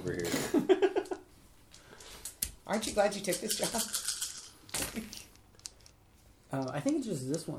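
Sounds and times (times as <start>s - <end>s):
speech: 0.0s - 0.4s, 2.7s - 4.0s, 6.5s - 7.5s
soft noise: 0.0s - 7.5s
two eight-sided dice rattling and clattering onto a hard table: 1.7s - 7.5s.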